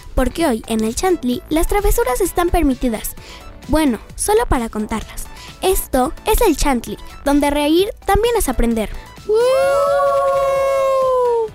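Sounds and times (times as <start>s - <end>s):
speech: 0.2s - 10.6s
group of people screaming together: 9.3s - 11.5s.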